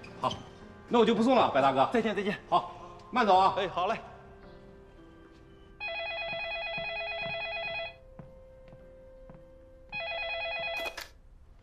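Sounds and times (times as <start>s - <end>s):
speech: 0.2s - 4.1s
telephone ringing: 5.8s - 8.0s, 9.9s - 11.1s.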